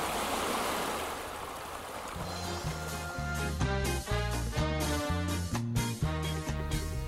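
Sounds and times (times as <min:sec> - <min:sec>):
flowing Antarctic stream water: 0:00.0 - 0:03.4
melodic instrumental line of repeated stepping notes: 0:02.2 - 0:07.0.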